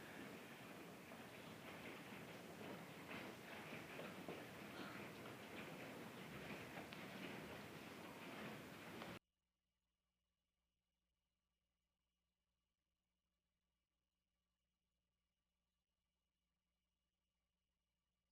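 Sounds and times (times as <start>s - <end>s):
hail falling on hard surfaces: 0.0s - 9.2s.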